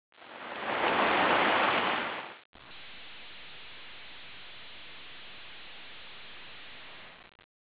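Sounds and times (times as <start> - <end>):
sea: 0.1 - 5.0.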